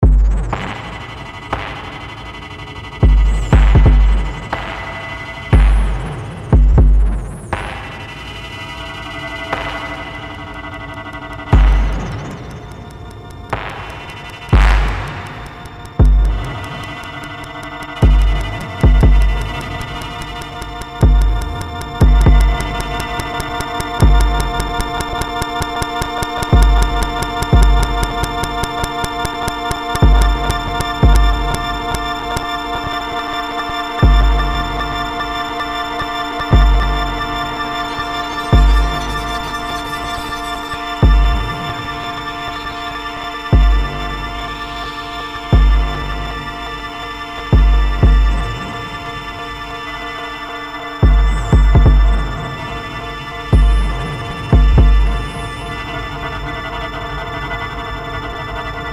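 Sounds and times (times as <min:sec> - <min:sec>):
experimental music made from bass drum grains: 0:00.0 - 0:01.0, 0:03.0 - 0:04.9, 0:05.5 - 0:08.0, 0:11.5 - 0:12.4, 0:14.6 - 0:42.9, 0:43.5 - 0:49.4, 0:51.0 - 0:55.9.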